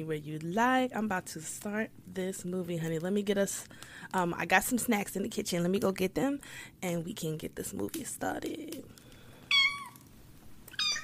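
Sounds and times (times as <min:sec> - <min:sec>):
speech: 0:00.0 - 0:09.0
quiet low hum: 0:00.0 - 0:11.0
pet cat meowing: 0:09.5 - 0:10.0, 0:10.7 - 0:11.0.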